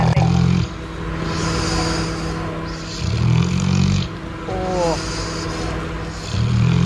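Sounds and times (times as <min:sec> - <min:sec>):
deep rumbling snores: 0:00.0 - 0:06.8
person murmuring a short reaction: 0:04.5 - 0:05.4.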